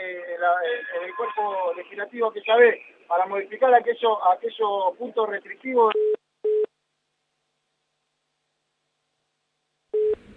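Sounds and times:
speech: 0.4 - 6.0
telephone busy tone after a call lost signal: 6.0 - 6.7, 10.0 - 10.3.

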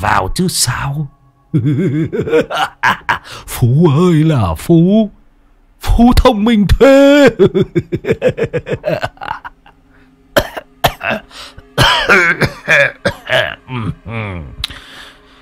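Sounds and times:
speech: 0.0 - 5.2, 5.8 - 9.4, 11.0 - 14.6
laughter: 1.5 - 3.4, 7.2 - 9.8
old man in poor health coughing: 10.4 - 14.2.

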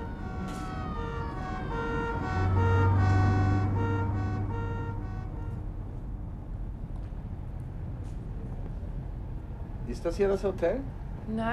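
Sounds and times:
two-tone ambulance siren behind a moving car: 0.0 - 5.9
low engine hum of a moving car: 0.0 - 10.0
speech: 10.0 - 11.5.

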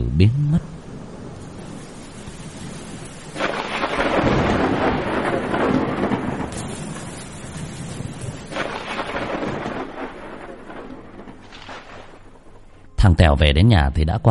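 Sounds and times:
deep thunder rolling: 0.0 - 12.7
heavy steady rain hissing: 0.0 - 12.8
speech: 0.2 - 0.6, 13.1 - 14.2.

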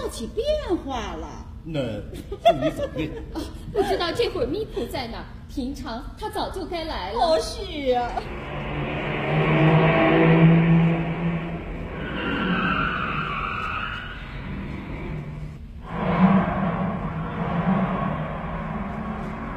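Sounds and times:
speech: 0.1 - 8.6
laughter: 2.2 - 4.3
car engine revving and pulling away: 8.2 - 19.5.

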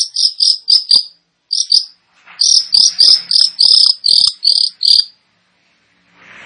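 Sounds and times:
Long-tailed shrike song of scratchy buzzy notes and harsh chirps: 0.0 - 5.1.

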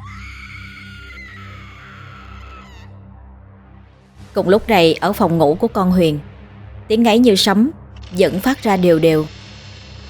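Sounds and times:
long high scream across a cold rice field: 0.0 - 3.0
speech: 4.4 - 6.3, 6.9 - 9.4.

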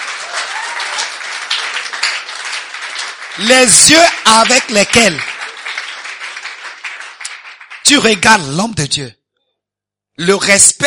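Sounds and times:
audience applauding during a sermon: 0.0 - 8.3
speech: 3.4 - 5.3, 7.9 - 9.2, 10.2 - 10.8.

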